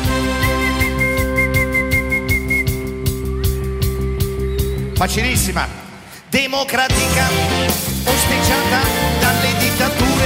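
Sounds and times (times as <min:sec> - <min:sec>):
steady rhythmic band accompaniment with soft percussion: 0:00.0 - 0:10.2
person whistling a one-note melody on one high note: 0:00.1 - 0:05.1
speech: 0:05.0 - 0:09.1.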